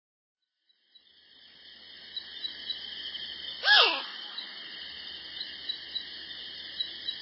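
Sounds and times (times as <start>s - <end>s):
steady high buzz of insects: 0.6s - 7.2s
rufous night heron harsh croaking squawk: 3.6s - 4.3s.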